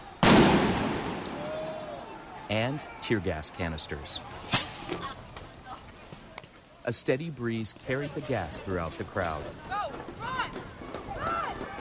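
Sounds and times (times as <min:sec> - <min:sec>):
police concussion grenade blast during a street protest: 0:00.2 - 0:01.4
speech: 0:02.5 - 0:05.1, 0:06.9 - 0:10.4.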